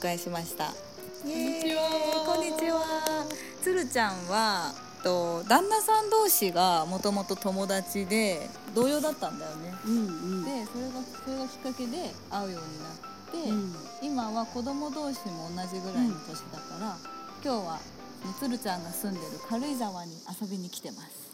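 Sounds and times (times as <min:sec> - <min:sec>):
speech: 0:00.0 - 0:21.2
cicadas buzzing outdoors: 0:00.0 - 0:21.3
two women chatting: 0:00.0 - 0:21.3
two women laughing: 0:01.2 - 0:03.5.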